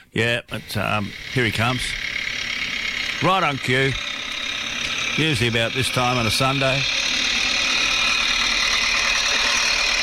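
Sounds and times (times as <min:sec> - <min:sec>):
tractor engine idling outdoors on a sunny day: 0:00.0 - 0:10.0
speech: 0:00.1 - 0:02.1, 0:03.2 - 0:04.1, 0:05.2 - 0:07.0.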